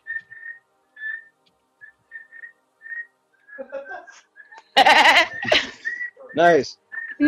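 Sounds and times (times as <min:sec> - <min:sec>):
person whistling in short halting phrases: 0:00.0 - 0:03.7, 0:05.7 - 0:07.2
loud laughter: 0:03.6 - 0:06.0
speech: 0:03.6 - 0:07.2.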